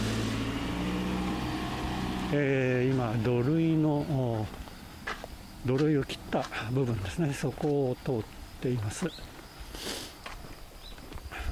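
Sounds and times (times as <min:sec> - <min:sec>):
car engine rumbling on a narrow road: 0:00.0 - 0:07.4
faint road noise: 0:00.0 - 0:11.5
speech: 0:02.3 - 0:04.6, 0:05.6 - 0:09.9.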